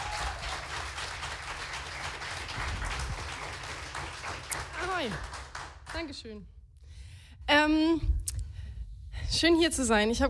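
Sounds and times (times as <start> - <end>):
crowd applauding with many hands clapping: 0.0 - 6.1
speech: 5.0 - 6.6, 7.5 - 8.2, 9.3 - 10.2.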